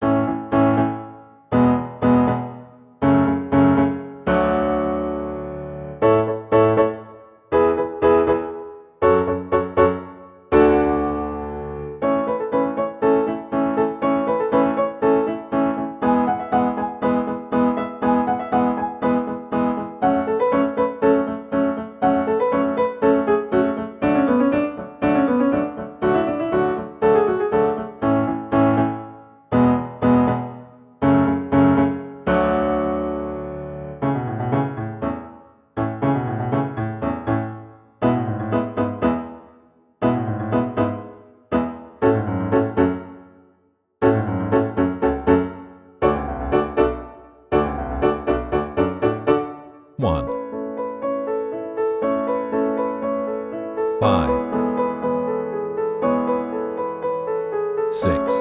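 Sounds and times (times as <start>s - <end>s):
piano playing I V vi IV chord progression in A: 0.0s - 43.3s, 44.0s - 58.3s.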